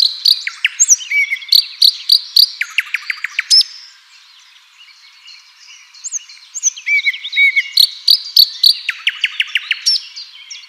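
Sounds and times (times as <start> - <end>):
common nightingale Luscinia megarhynchos singing: 0.0 - 10.6.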